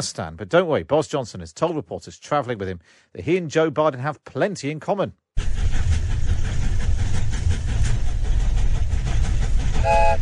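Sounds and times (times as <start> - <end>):
speech: 0.0 - 5.2
train rumbling past with wheels clattering on track: 5.4 - 10.1
train whistle: 9.7 - 10.1.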